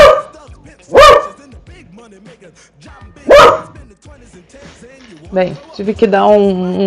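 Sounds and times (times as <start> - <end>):
dogs barking: 0.0 - 1.4, 3.2 - 3.8
speech: 1.8 - 6.8
shuffling sounds: 4.5 - 5.9.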